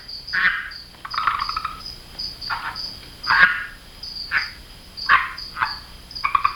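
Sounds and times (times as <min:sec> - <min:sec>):
high insect-like hum of night chorus: 0:00.0 - 0:06.5
red-eyed tree frog calls: 0:00.0 - 0:06.5.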